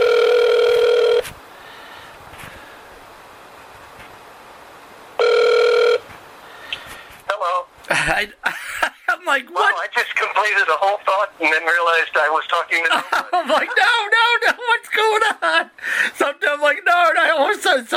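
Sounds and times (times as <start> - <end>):
telephone dial tone after a dropped call: 0.0 - 1.2, 5.2 - 6.0
telephone line hiss: 0.0 - 1.8, 5.2 - 6.9
laughter: 8.0 - 10.1, 12.8 - 15.7
speech: 8.1 - 8.6, 9.3 - 17.9.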